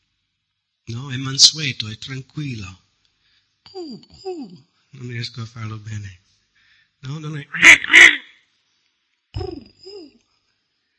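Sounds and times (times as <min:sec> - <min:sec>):
speech: 0:00.9 - 0:02.8, 0:03.8 - 0:06.2, 0:07.0 - 0:08.2
person imitating dove cooing: 0:03.7 - 0:04.6, 0:09.4 - 0:10.2.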